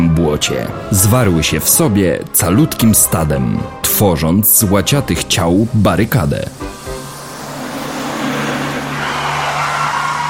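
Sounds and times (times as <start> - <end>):
speech: 0.3 - 6.7
car tires skidding on snow: 6.5 - 10.2
low car engine drone: 6.5 - 10.2.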